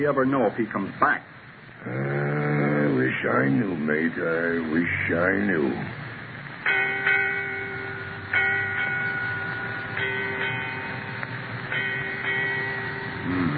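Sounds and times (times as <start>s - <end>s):
speech: 0.0s - 2.2s, 3.2s - 6.0s
faint hum: 0.0s - 13.5s
ship's bell striking eight bells: 6.6s - 13.5s.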